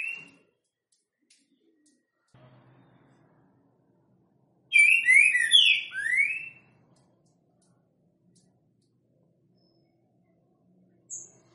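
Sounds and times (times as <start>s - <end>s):
Green-winged saltator singing loud whistled phrase: 0.0s - 0.4s, 4.7s - 6.8s.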